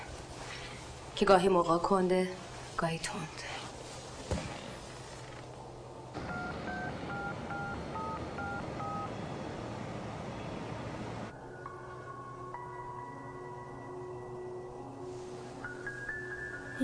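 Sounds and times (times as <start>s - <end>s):
steady hum: 0.0s - 16.8s
speech: 1.2s - 3.6s
telephone ringing tone: 6.2s - 9.1s.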